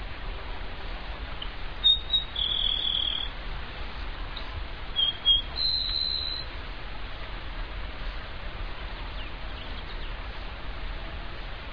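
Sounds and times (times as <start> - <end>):
steady background hiss: 0.0 - 11.7
Grassland Sparrow Ammodramus humeralis song: 1.4 - 3.4, 5.0 - 6.5, 8.9 - 10.5.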